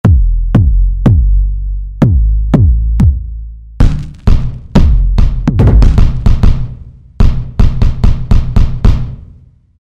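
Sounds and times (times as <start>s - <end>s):
synthesizer kick drum from factory patch: 0.0s - 9.6s.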